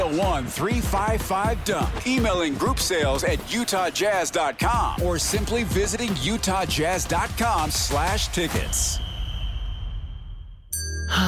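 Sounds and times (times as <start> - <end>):
speech: 0.2 - 9.1
bell ringing: 10.7 - 11.2.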